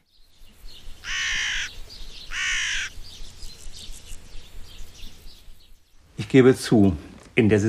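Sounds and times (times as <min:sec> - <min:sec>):
soft bird calls: 0:00.0 - 0:07.0
crow cawing: 0:01.0 - 0:03.0
speech: 0:06.3 - 0:07.6.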